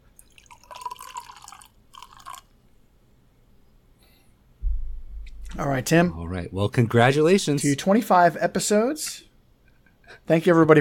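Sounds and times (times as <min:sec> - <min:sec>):
sparkling sake poured into a glass: 0:00.2 - 0:02.5
soft low thump: 0:04.6 - 0:06.2
speech: 0:05.6 - 0:09.3, 0:10.1 - 0:10.7.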